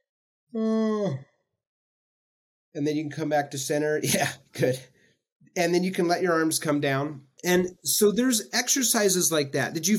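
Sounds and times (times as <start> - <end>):
person giving a long voiced yawn: 0.5 - 1.3
speech: 0.5 - 1.3, 2.8 - 4.9, 5.5 - 9.9.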